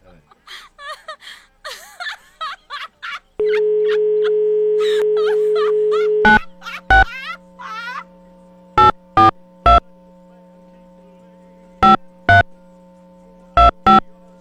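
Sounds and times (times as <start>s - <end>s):
laughter: 0.0s - 8.2s
phone beeping electronically in short tones: 3.4s - 10.6s, 11.8s - 12.8s, 13.5s - 14.3s
phone ringing with a warbling trill: 3.4s - 14.3s
steady low hum: 3.4s - 14.3s.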